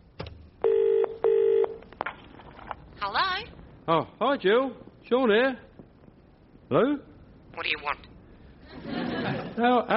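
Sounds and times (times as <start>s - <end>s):
telephone ringing tone on a line: 0.6s - 1.8s
speech: 3.1s - 5.7s, 6.7s - 8.1s, 8.8s - 9.9s
laughter: 8.6s - 9.9s.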